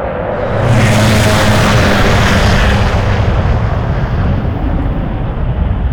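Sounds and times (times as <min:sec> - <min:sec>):
strogg vehicle flying by: 0:00.2 - 0:05.8.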